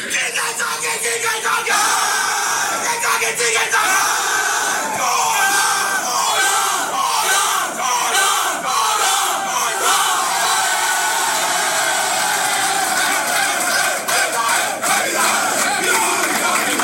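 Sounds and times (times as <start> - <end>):
football players chanting: 0.0 - 16.8
football players cheering and yelling in dressing room after cup win: 1.2 - 16.8.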